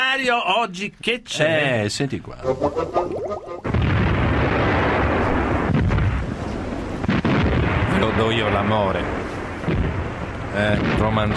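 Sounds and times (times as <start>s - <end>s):
speech: 0.2s - 3.8s, 8.0s - 10.0s, 10.6s - 11.3s
bombs exploding: 3.1s - 11.3s.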